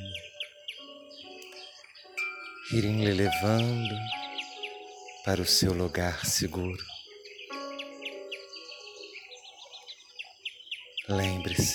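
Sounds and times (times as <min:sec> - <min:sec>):
birds singing in a busy chorus of chirps, trills and whistled notes: 0:00.0 - 0:11.7
speech: 0:02.7 - 0:04.2, 0:05.2 - 0:06.9, 0:11.1 - 0:11.7.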